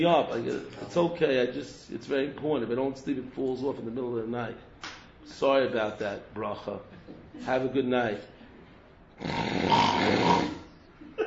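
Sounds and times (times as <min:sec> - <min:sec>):
speech: 0:00.0 - 0:08.3, 0:09.2 - 0:10.5
loud rasping snore: 0:09.2 - 0:10.7.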